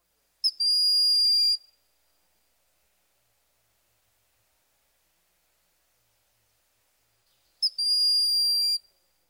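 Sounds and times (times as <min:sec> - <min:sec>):
broad-winged hawk whistling: 0:00.5 - 0:01.6, 0:07.6 - 0:08.8.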